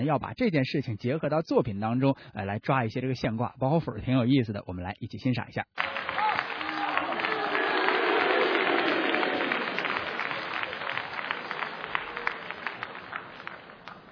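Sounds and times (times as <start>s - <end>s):
speech: 0.0s - 6.2s
live audience applause: 5.8s - 14.1s.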